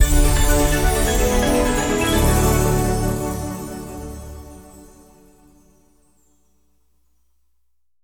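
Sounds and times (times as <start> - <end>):
free spin intro music: 0.0 - 5.4.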